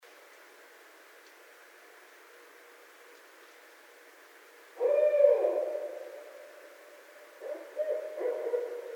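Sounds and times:
barred owl hooting: 4.8s - 8.9s.

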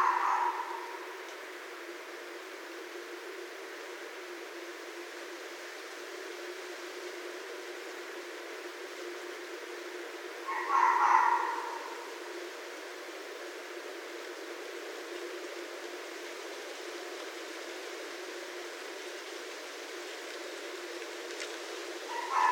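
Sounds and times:
red fox giving a short hoarse bark: 0.0s - 1.1s, 10.5s - 12.1s, 22.1s - 22.5s
quiet hiss: 0.0s - 22.5s.

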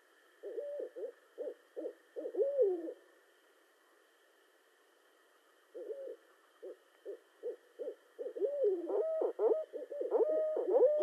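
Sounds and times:
steady faint hum: 0.0s - 11.0s
barred owl hooting: 0.4s - 3.0s, 5.7s - 11.0s.

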